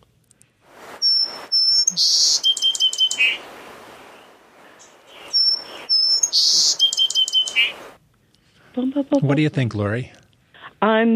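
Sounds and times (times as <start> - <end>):
small songbird, possibly a finch, singing: 0.8 - 8.0
speech: 1.9 - 2.5, 8.8 - 10.2, 10.8 - 11.1.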